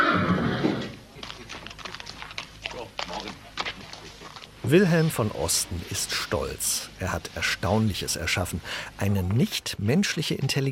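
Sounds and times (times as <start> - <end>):
horse whinnying: 0.0 - 1.0
horse hoof clops on a hard surface: 1.2 - 4.5
speech: 4.7 - 10.6.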